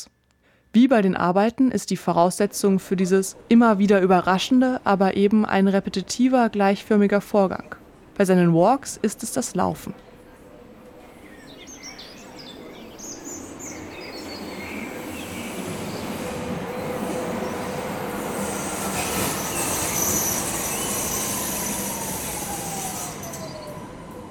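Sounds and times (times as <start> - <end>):
speech: 0.7 - 10.0
train rumbling through the railway station in Kirchzarten: 2.8 - 24.2
bird chirping: 11.2 - 16.2
faint high train wheel squeal: 18.2 - 23.8.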